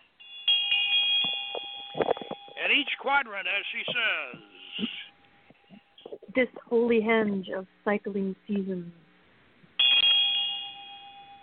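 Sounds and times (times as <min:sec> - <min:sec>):
small hand bell rung during a ritual circling a henge: 0:00.5 - 0:02.6, 0:09.8 - 0:11.4
speech: 0:02.7 - 0:05.0, 0:06.4 - 0:09.0.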